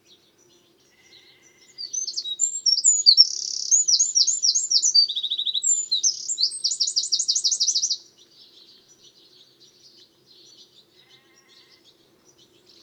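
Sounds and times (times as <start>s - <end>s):
Eurasian wren Troglodytes troglodytes singing: 0.0s - 12.8s.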